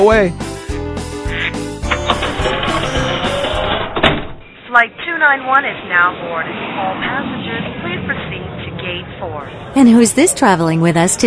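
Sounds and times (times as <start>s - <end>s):
speech: 0.0s - 0.4s, 4.7s - 8.0s, 9.0s - 11.2s
loud nasal honking calls: 1.2s - 1.8s
sharp squawk: 1.3s - 1.7s
dense jumble of sound: 2.5s - 11.2s.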